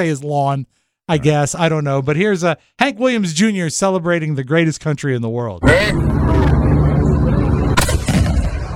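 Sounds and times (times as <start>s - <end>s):
speech: 0.0s - 6.5s
constant low outdoor rumble: 5.6s - 8.7s
Civil War cannon firing on a front lawn: 7.7s - 8.7s.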